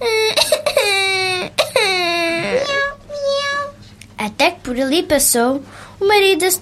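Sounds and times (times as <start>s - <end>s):
young girl crying with wailing sobs: 0.0s - 3.8s
speech: 4.7s - 6.6s.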